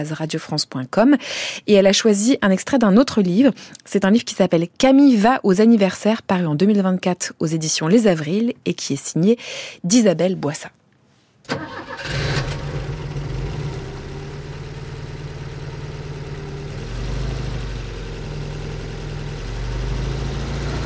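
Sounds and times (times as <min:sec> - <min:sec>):
speech: 0:00.0 - 0:10.8, 0:11.5 - 0:12.2
old Volvo estate car engine cranking and idling: 0:11.5 - 0:20.8.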